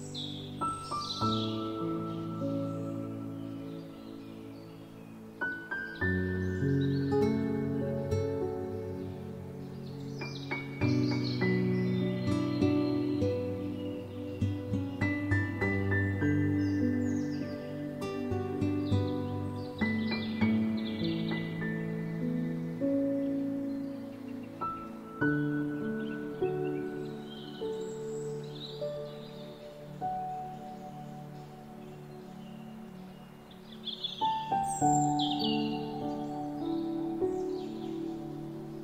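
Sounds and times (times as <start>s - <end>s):
birds singing with chirps and trills: 0.0s - 38.8s
relaxing music with warm sustained chord pad: 0.0s - 38.8s.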